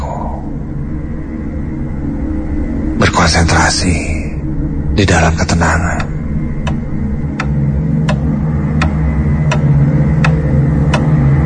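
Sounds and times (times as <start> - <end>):
steady low hum: 0.0 - 11.4
speech: 3.0 - 4.1, 5.0 - 6.0
clock ticking: 5.9 - 11.1.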